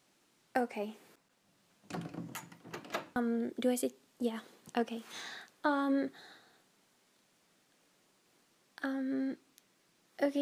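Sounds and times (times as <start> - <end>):
speech: 0.6 - 1.1, 3.2 - 6.4, 8.8 - 9.4, 10.2 - 10.4
door pushed shut settling into the frame: 1.9 - 3.2.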